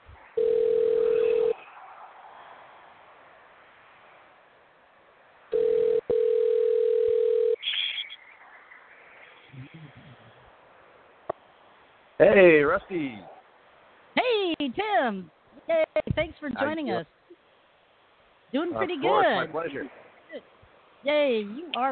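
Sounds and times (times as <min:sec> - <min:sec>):
telephone dial tone while a call is dialed: 0:00.4 - 0:01.6, 0:05.5 - 0:07.6
speech: 0:12.2 - 0:13.3, 0:14.6 - 0:17.2, 0:18.5 - 0:21.9.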